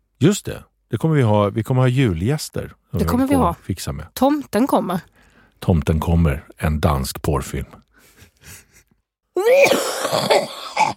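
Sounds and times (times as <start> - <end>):
speech: 0.2 - 7.8, 9.4 - 10.9
harsh raspy coughing fit: 9.4 - 10.9.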